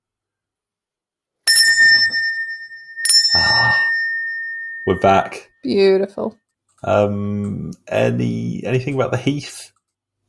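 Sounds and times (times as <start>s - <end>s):
bell struck with a bright sustained ringing tone: 1.5s - 5.5s
speech: 4.9s - 9.7s.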